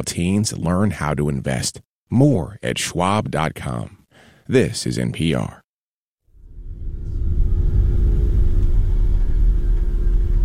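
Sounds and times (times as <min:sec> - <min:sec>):
speech: 0:00.0 - 0:05.6
car engine rumbling inside the vehicle on a road in the Caribbean: 0:06.4 - 0:10.4.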